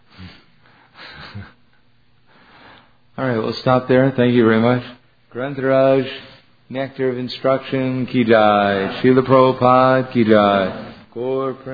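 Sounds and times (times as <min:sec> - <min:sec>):
people breathing softly in a silent room: 0:00.0 - 0:01.6, 0:02.2 - 0:03.1
person snorting: 0:00.1 - 0:01.6
speech: 0:03.2 - 0:11.7.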